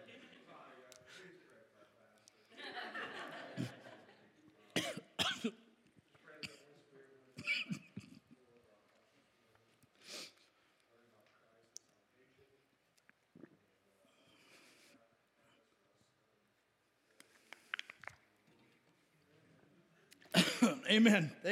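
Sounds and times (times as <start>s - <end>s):
laughter: 0.0s - 0.9s, 2.5s - 4.8s
person coughing after taking a drink: 4.8s - 5.5s, 7.4s - 8.2s, 20.4s - 21.3s
speech: 20.9s - 21.5s.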